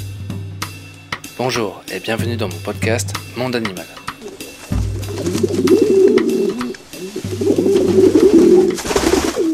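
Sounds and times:
speech: 0:01.4 - 0:04.0
pigeon cooing: 0:04.0 - 0:09.5.

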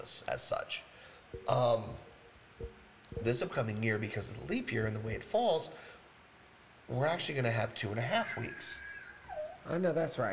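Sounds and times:
speech: 0:00.0 - 0:06.0, 0:06.9 - 0:08.9, 0:09.6 - 0:10.3
dog whining: 0:08.3 - 0:09.8.

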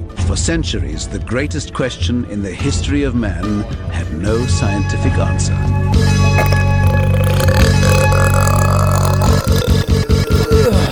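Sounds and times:
speech: 0:00.3 - 0:06.6
long loud rumbling belch: 0:06.4 - 0:10.9.

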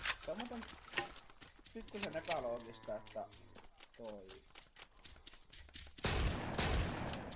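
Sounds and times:
speech: 0:00.3 - 0:04.6
shotgun firing in bursts in a video game: 0:06.0 - 0:07.3.

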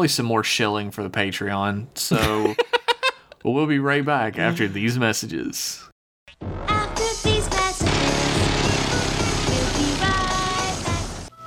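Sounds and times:
speech: 0:00.0 - 0:02.8, 0:03.4 - 0:06.7
laughter: 0:02.1 - 0:03.3
heavy steady rain: 0:07.9 - 0:11.3.

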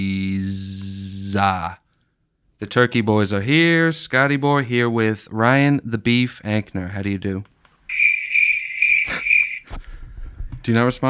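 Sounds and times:
speech: 0:01.3 - 0:01.8, 0:02.6 - 0:08.1, 0:10.6 - 0:11.0
crickets chirping in a dense high-pitched trill: 0:07.9 - 0:09.7.

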